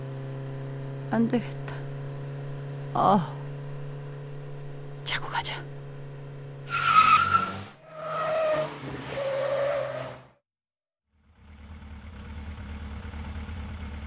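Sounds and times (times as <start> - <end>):
low engine drone and rumbling motor idle: 0.0 - 9.1, 11.2 - 14.0
speech: 1.1 - 1.8, 2.9 - 3.4
rear tire skidding on a wet road: 6.7 - 10.3.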